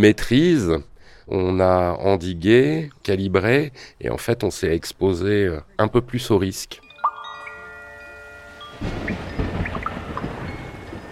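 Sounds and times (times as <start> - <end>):
speech: 0.0 - 6.8, 8.8 - 9.3
brief sustained tone: 6.9 - 9.2
steady rain: 8.5 - 11.1
deep rolling thunder: 8.8 - 11.1.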